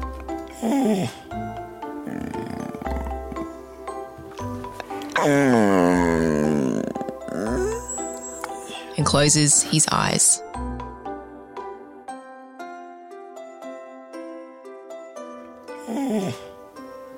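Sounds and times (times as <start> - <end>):
dog letting out a big yawn: 0.5 - 3.5, 5.0 - 8.9, 15.8 - 16.6
speech: 0.6 - 1.5, 5.2 - 5.7, 9.1 - 10.4
dog grunting and snuffling: 2.0 - 3.7, 5.0 - 8.9.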